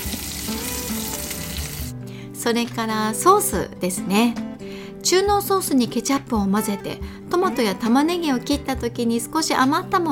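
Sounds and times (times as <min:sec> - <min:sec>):
100% beef hamburger patty frying in a pan: 0:00.0 - 0:01.9
speech: 0:02.4 - 0:04.4, 0:05.0 - 0:10.1.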